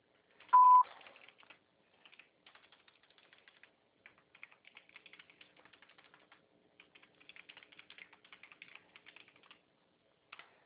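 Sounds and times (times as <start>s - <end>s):
light computer keyboard keystrokes: 0.4s - 9.6s
sharp electronic beep: 0.6s - 0.8s.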